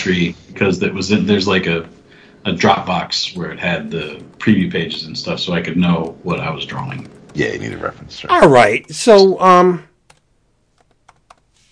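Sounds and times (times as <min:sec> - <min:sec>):
speech: 0:00.0 - 0:09.9
typing on a computer keyboard: 0:10.1 - 0:11.7.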